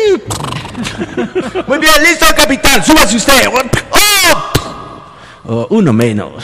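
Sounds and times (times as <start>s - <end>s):
horse neighing: 0.1s - 0.9s
laughter: 0.7s - 2.2s
speech: 1.0s - 3.7s, 5.5s - 6.4s.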